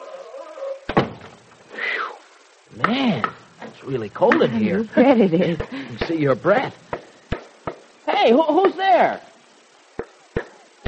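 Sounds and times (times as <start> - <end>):
door shut with a solid thunk: 0.9 - 1.4
speech: 2.7 - 6.9, 8.2 - 9.3
laughter: 4.4 - 6.2.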